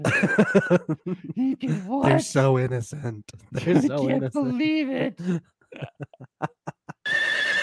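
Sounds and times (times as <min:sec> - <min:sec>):
laughter: 0:00.0 - 0:02.1, 0:03.5 - 0:04.6, 0:05.2 - 0:07.0
speech: 0:00.0 - 0:06.6
horse whinnying: 0:07.0 - 0:07.6.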